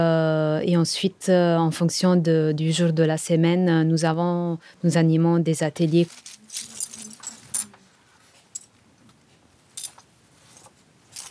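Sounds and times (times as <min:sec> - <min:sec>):
speech: 0:00.0 - 0:06.7
small hard plastic keyboard keycaps clinking and rattling into little pouches: 0:06.1 - 0:07.8.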